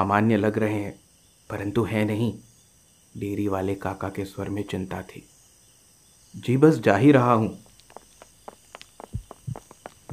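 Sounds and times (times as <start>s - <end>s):
speech: 0.0s - 2.5s, 3.1s - 5.3s, 6.3s - 7.6s
faint steady hiss: 0.0s - 10.1s
footsteps of several people approaching: 7.6s - 10.1s.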